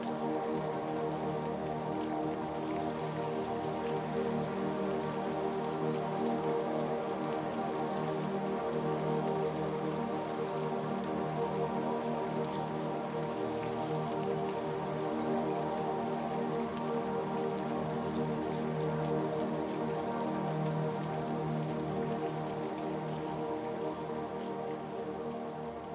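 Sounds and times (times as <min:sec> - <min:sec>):
rain pattering: 0:00.0 - 0:25.9.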